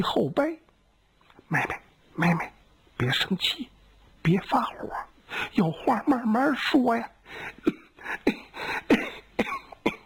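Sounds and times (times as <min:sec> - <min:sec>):
speech: 0:00.0 - 0:00.6, 0:01.5 - 0:09.1
raspy throaty breaths: 0:07.2 - 0:09.4
storyteller imitating an empress's fit of coughing: 0:07.6 - 0:10.0.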